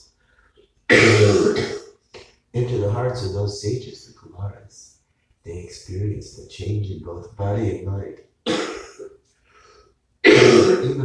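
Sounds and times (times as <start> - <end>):
harsh cough: 0.9 - 2.0, 8.4 - 9.2, 10.2 - 11.0
speech: 2.9 - 8.7, 10.7 - 11.0.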